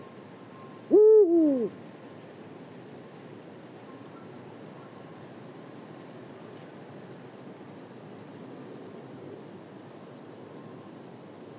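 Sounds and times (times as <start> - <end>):
Eurasian eagle-owl Bubo bubo booming hoot at Marianka, Slovakia: 0.9 - 1.7.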